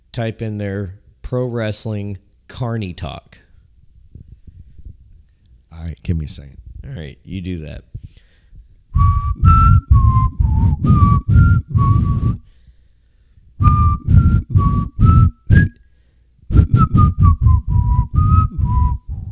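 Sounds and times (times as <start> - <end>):
speech: 0.2 - 3.4, 5.8 - 7.9
person whistling a tune in short choppy notes: 9.0 - 12.5, 13.6 - 15.9, 16.5 - 19.2.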